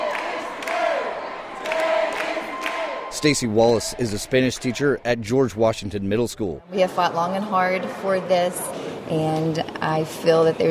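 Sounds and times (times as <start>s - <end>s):
large crowd of teachers cheering and shouting at the Capitol: 0.0s - 5.1s
speech: 3.2s - 10.7s.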